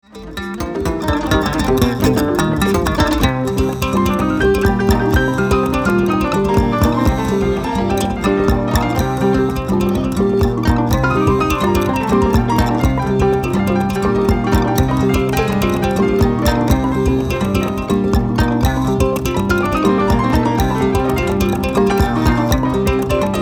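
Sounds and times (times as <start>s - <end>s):
griot jazz music: 1.0s - 23.3s.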